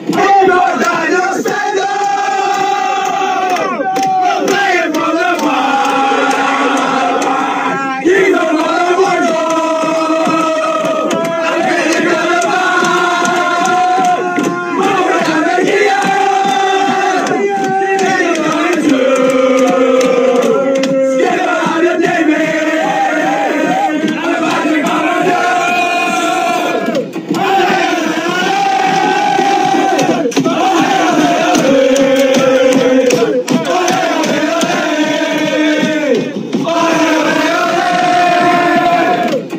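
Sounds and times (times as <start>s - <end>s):
football fans chanting allez: 0.0s - 39.5s.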